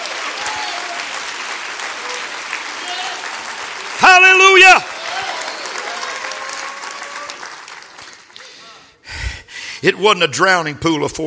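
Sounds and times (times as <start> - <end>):
church audience clapping in rejoicing: 0.0 - 8.9
speech: 9.8 - 11.2.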